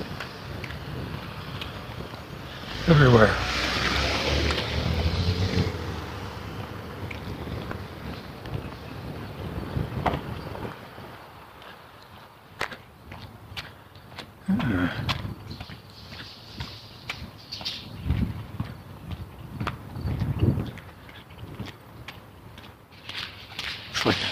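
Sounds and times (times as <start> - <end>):
car rushing past outdoors: 0.0 - 12.0
traffic noise rumbling outdoors: 0.0 - 24.3
wind buffeting the microphone: 0.0 - 24.3
speech: 2.9 - 3.8.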